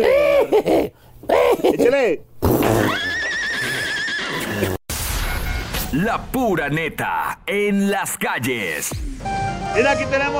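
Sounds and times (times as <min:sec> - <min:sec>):
noise: 0:00.0 - 0:10.0
speech: 0:01.6 - 0:04.0, 0:05.9 - 0:10.3
horse whinnying: 0:02.6 - 0:04.8.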